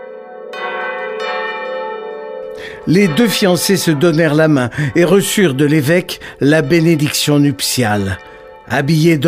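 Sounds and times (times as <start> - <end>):
church bells pealing: 0.0 - 9.2
speech: 2.8 - 9.2.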